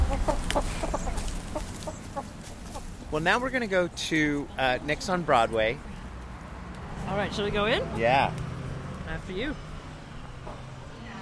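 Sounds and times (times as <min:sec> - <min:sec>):
chickens clucking at a gas station: 0:00.0 - 0:03.2, 0:10.3 - 0:10.8
speech: 0:03.1 - 0:05.9, 0:07.1 - 0:08.4, 0:09.1 - 0:09.7.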